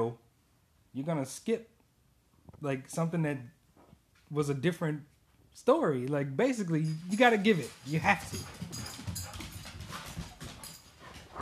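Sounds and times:
speech: 0.0s - 0.2s, 1.0s - 1.7s, 2.6s - 3.6s, 4.3s - 8.9s
dog paws running on a hard floor: 6.4s - 11.4s.

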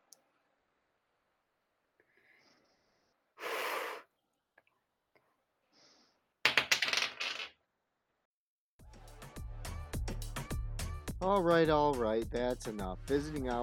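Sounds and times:
six-sided die clattering across a table: 6.5s - 7.6s
music: 8.8s - 13.6s
speech: 11.2s - 13.6s.

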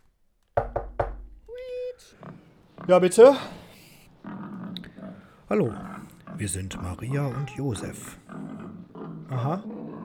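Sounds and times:
sharp loud knocks on a door: 0.6s - 1.5s
faint murmur: 1.5s - 10.0s
short drawn-out vocal sound: 1.6s - 10.0s
speech: 2.9s - 3.6s, 5.5s - 8.2s, 9.3s - 9.8s.

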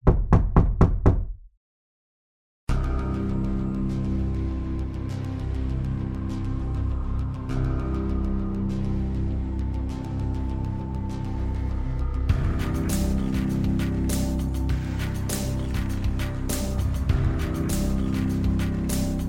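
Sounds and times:
heavy rapid knocks pounding on a door: 0.0s - 1.4s
dense droning music bed: 2.7s - 19.2s.

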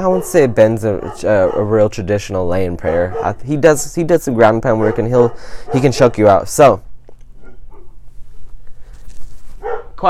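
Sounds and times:
dog barking: 0.0s - 1.9s, 2.8s - 3.6s, 4.6s - 6.3s, 7.4s - 8.0s, 9.6s - 10.0s
speech: 0.0s - 6.9s, 9.6s - 10.0s
steady low hum: 0.0s - 10.0s.

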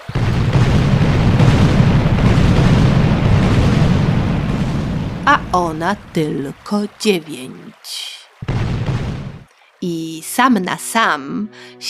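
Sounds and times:
cannon salute fire in honour of an empress arriving by ship at Kaniów on the Dnieper: 0.0s - 6.8s, 8.4s - 9.5s
speech: 5.5s - 8.1s, 9.8s - 11.8s.

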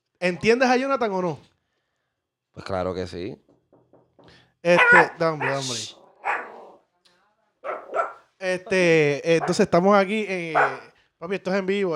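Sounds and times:
speech: 0.2s - 1.5s, 2.6s - 3.5s, 4.3s - 6.0s, 8.4s - 11.9s
pitbull barking at a drive-through: 4.7s - 6.8s, 7.6s - 8.3s, 9.4s - 9.8s, 10.5s - 10.9s
pitbull whining faintly: 4.8s - 6.8s.

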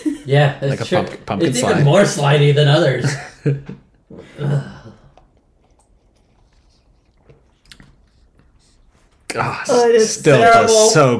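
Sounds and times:
speech: 0.2s - 4.7s, 9.3s - 11.1s
quiet swallowing: 4.1s - 8.5s
noisy slurp of pumpkin hard seltzer being sipped: 4.8s - 8.9s.

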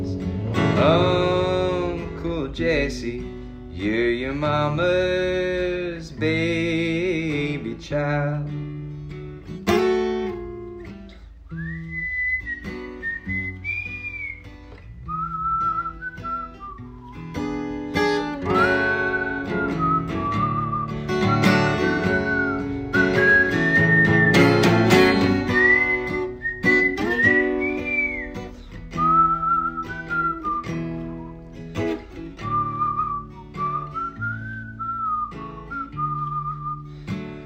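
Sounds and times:
steady instrumental backing music: 0.0s - 6.1s, 8.7s - 37.4s
speech: 2.6s - 8.6s
person whistling a wandering melody: 11.2s - 17.5s, 18.1s - 31.6s, 32.4s - 37.2s.

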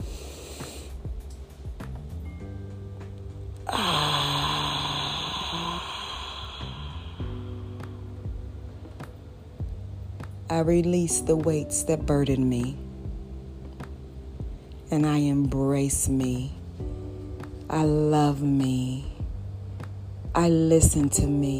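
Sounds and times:
soft sustained music: 0.0s - 21.5s
deep breath: 3.7s - 7.8s
speech: 10.6s - 12.8s, 14.9s - 16.6s, 17.7s - 19.1s, 20.4s - 21.5s.

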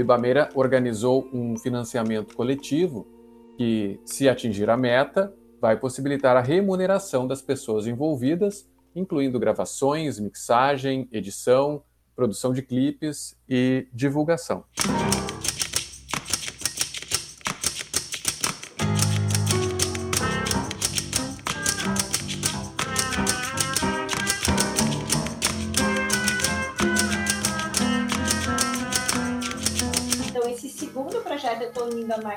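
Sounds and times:
speech: 0.0s - 15.3s
typewriter keys typing: 14.8s - 32.1s.

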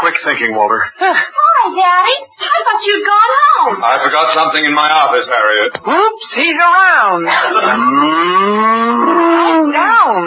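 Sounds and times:
speech: 0.2s - 10.2s
cow mooing: 7.7s - 9.7s.

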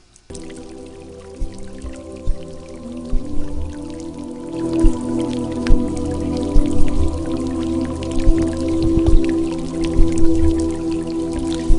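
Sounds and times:
water drips and gentle splashes: 0.0s - 11.7s
calm ambient meditation music played from a CD: 0.3s - 11.7s.

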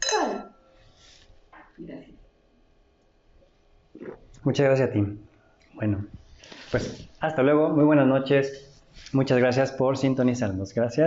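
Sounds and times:
glasses clinking in a toast: 0.0s - 0.8s
speech: 4.0s - 11.0s.

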